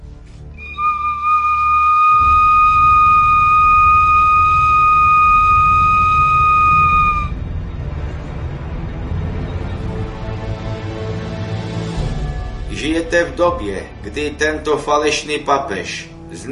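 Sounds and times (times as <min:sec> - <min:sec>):
low rumbling background: 0:00.0 - 0:16.5
whistle blown on a wild turkey bone: 0:00.6 - 0:07.4
speech: 0:13.0 - 0:16.5.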